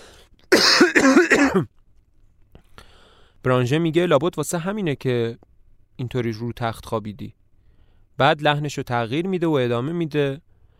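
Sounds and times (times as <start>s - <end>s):
man coughing: 0.5s - 1.7s
speech: 1.0s - 1.8s, 3.4s - 7.4s, 8.2s - 10.5s.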